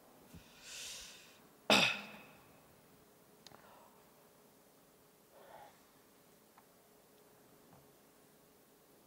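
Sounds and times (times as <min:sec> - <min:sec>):
person taking a breathy inhale: 0:00.4 - 0:01.4
person coughing: 0:01.7 - 0:02.3.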